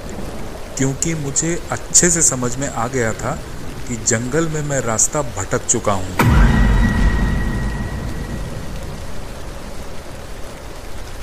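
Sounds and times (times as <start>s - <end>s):
heavy rain: 0.0s - 11.2s
speech: 0.8s - 6.5s
deep rumble of thunder: 6.2s - 10.6s.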